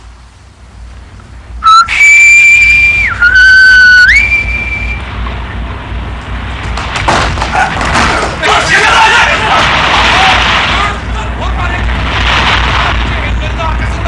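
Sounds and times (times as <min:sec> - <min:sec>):
rumbling and bustle: 0:00.0 - 0:14.0
whistle blast blown as a signal: 0:01.6 - 0:05.1.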